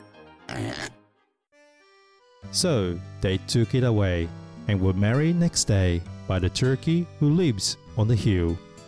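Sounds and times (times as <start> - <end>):
person imitating a pig oinking and grunting: 0.5 - 1.0
speech: 2.5 - 8.7.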